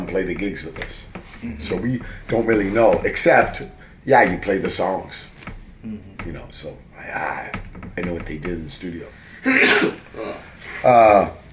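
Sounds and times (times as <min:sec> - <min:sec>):
speech: 0:00.1 - 0:11.4
person sneezing: 0:09.4 - 0:10.5.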